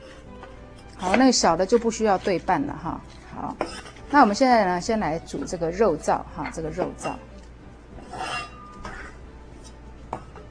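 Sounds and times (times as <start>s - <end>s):
metal pot set down on a gas stove: 0.0s - 2.5s, 3.1s - 4.5s, 8.0s - 10.4s
speech: 1.0s - 7.3s.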